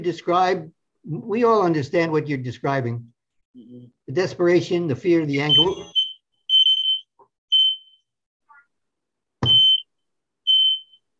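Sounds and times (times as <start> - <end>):
speech: 0.0 - 6.0
smoke alarm beeping: 5.4 - 8.1, 9.4 - 11.1.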